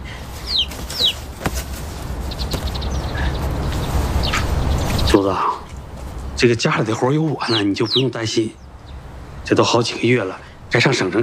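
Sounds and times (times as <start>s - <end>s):
baby chicks cheeping: 0.0s - 5.4s, 7.4s - 9.1s
steady low rumble: 0.0s - 11.2s
speech: 5.1s - 5.6s, 6.4s - 8.6s, 9.5s - 11.2s.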